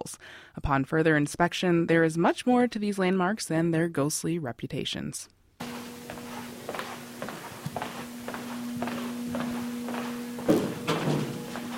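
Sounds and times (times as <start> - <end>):
speech: 0.0 - 5.4
footsteps on a creaky wooden floor in an old campus hall: 5.6 - 11.7
low constant hum: 5.6 - 11.7.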